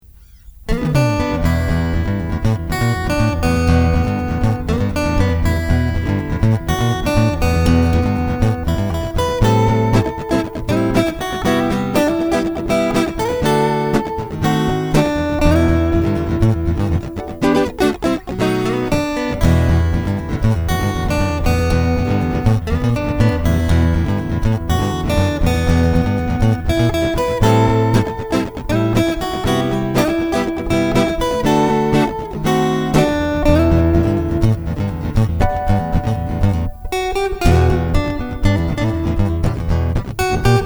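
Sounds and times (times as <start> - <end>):
guitar: 0.0 - 40.6.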